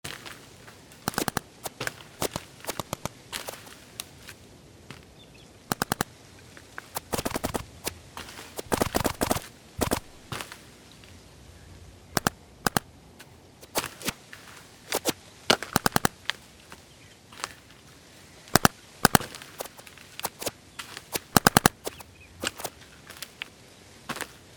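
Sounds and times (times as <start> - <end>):
paintball field ambience: 0.0 - 24.5
paintball shots firing: 1.0 - 3.8, 5.7 - 6.1, 6.9 - 7.9, 8.5 - 10.4, 14.9 - 16.2, 18.5 - 20.5, 21.1 - 22.7.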